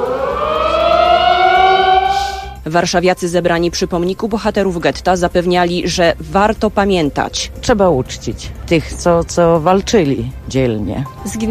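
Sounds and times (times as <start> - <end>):
civil defense alarm siren wailing across the city: 0.0 - 2.6
speech: 2.7 - 11.4.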